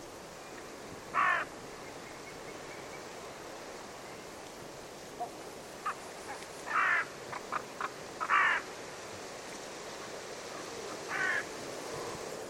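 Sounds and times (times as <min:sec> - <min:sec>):
constant background hiss: 0:00.0 - 0:12.4
bird harsh raspy caws: 0:01.1 - 0:01.5, 0:06.6 - 0:08.7, 0:10.5 - 0:11.5.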